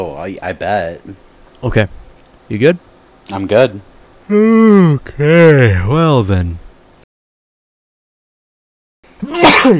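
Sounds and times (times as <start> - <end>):
speech: 0.0 - 6.6, 9.2 - 9.7
person sneezing: 9.2 - 9.7.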